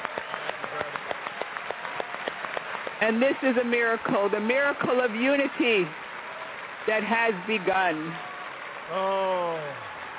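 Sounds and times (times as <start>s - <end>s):
crowd applause from a standing audience: 0.0s - 10.1s
speech: 3.0s - 6.0s, 6.8s - 8.3s, 8.9s - 9.9s
person letting out a long falling scream or yell: 9.0s - 9.8s.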